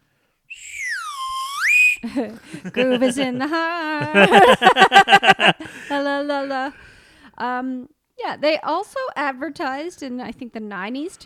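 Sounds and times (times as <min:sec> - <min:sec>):
candy slide whistle being blown: 0:00.5 - 0:02.1
laughter: 0:02.0 - 0:06.0
speech: 0:02.0 - 0:06.8, 0:07.4 - 0:11.2.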